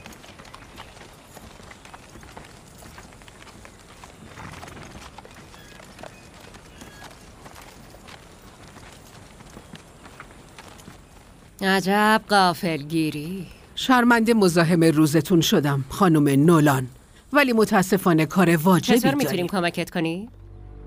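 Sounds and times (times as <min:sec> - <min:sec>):
hoofbeats of a ridden horse running: 0:00.0 - 0:15.5
speech: 0:11.6 - 0:20.4.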